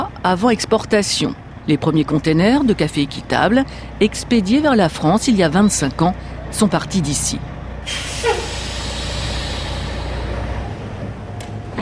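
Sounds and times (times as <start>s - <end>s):
heavy truck engine idling: 0.0s - 11.8s
speech: 0.2s - 8.2s
truck brakes hissing or squealing: 7.8s - 11.5s.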